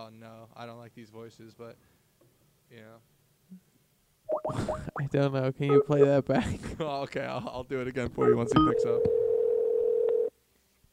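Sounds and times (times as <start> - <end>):
speech: 0.1 - 2.0, 2.7 - 3.7, 4.5 - 9.2
telephone ringback tone: 8.2 - 10.3.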